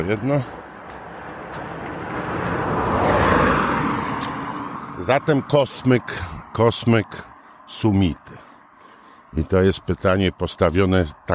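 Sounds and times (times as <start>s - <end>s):
speech: 0.0s - 0.6s, 5.0s - 8.4s, 9.3s - 11.3s
tire rush: 0.0s - 10.1s
car driving past: 0.6s - 6.5s.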